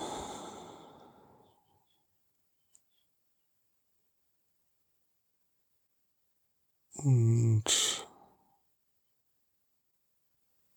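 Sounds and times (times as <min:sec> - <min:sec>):
deep breath drawn in: 0:00.0 - 0:01.4
small click: 0:02.7 - 0:02.9
speech: 0:07.0 - 0:07.8.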